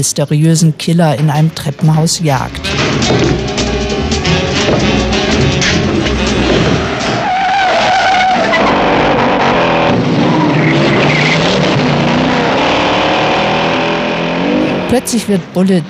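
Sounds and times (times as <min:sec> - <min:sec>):
speech: 0:00.0 - 0:05.6, 0:14.9 - 0:15.8
car engines roaring and revving in a film car chase: 0:01.0 - 0:15.8
car tires squealing and skidding in a film car chase: 0:02.6 - 0:14.9.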